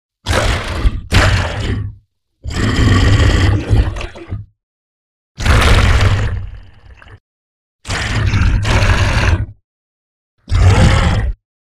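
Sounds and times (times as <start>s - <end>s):
giant beast roaring fiercely: 0.3s - 4.0s, 5.4s - 7.0s, 7.9s - 9.6s, 10.5s - 11.4s.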